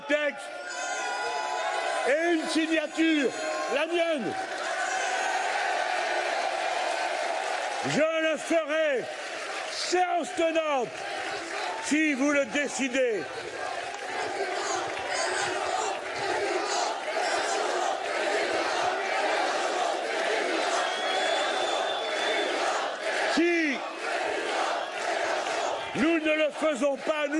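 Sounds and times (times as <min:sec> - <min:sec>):
large crowd chanting and shouting a name in unison: 0:00.0 - 0:27.3
speech: 0:00.3 - 0:00.6, 0:02.1 - 0:04.6, 0:07.8 - 0:09.2, 0:09.8 - 0:11.1, 0:11.8 - 0:13.7, 0:26.0 - 0:27.3
whistle: 0:20.8 - 0:22.5.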